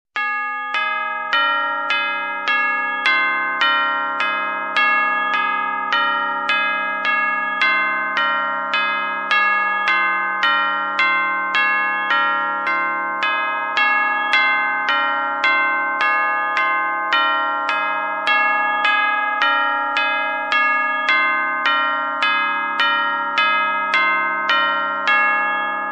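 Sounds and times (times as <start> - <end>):
clock bell melody: 0.2 - 25.9.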